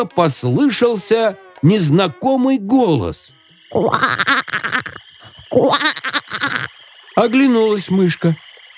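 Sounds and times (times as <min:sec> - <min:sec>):
toad croaking: 0:00.0 - 0:06.8
speech: 0:00.0 - 0:08.5.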